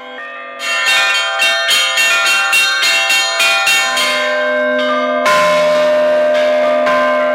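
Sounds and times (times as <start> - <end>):
church bells of a newly consecrated church in Ukraine rung by visitors: 0.0 - 7.3.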